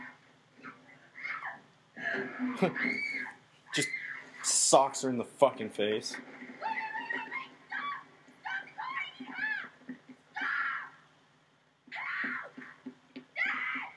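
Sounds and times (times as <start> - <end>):
young girl screaming and wailing: 1.2 - 1.6, 2.3 - 4.6, 6.6 - 11.0, 11.9 - 13.9
speech: 2.2 - 6.4.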